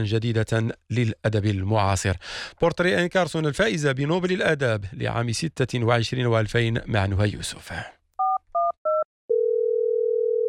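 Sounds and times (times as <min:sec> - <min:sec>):
speech: 0:00.0 - 0:08.0
long steady telephone tone on a long-distance call: 0:08.2 - 0:10.4.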